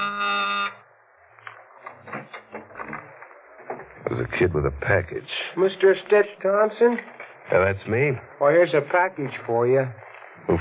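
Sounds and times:
loud harsh door buzzer: 0:00.0 - 0:00.8
speech: 0:04.2 - 0:10.6.

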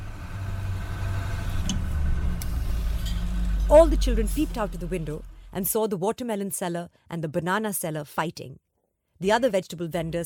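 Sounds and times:
school bus engine idling: 0:00.0 - 0:05.7
speech: 0:03.7 - 0:08.6, 0:09.2 - 0:10.2.

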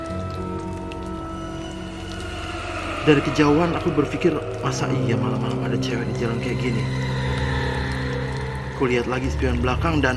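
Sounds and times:
light drizzle rain falling on road: 0:00.0 - 0:10.1
low sustained droning hum: 0:01.0 - 0:08.8
speech: 0:03.1 - 0:07.4, 0:08.8 - 0:10.1.

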